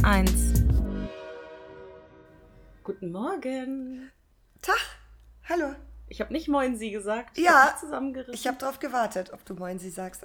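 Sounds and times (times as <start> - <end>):
speech: 0.0 - 0.6, 2.9 - 10.2
departing train horn: 1.0 - 2.2.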